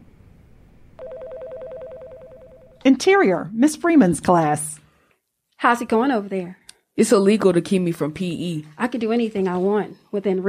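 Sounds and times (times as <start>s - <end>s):
office telephone ringing with electronic trill: 1.0s - 2.9s
speech: 2.8s - 4.8s, 5.6s - 10.4s.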